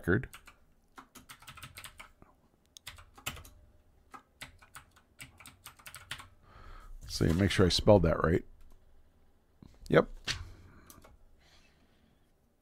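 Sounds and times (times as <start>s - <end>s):
speech: 0.0s - 0.5s, 7.2s - 8.5s, 9.9s - 10.2s
typing on a computer keyboard: 0.2s - 2.2s, 2.8s - 6.4s.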